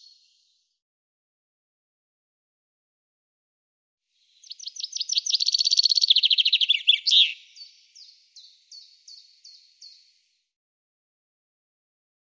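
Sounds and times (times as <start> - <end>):
common chaffinch song with rattling trill and down-slurred notes: 4.2 - 10.3.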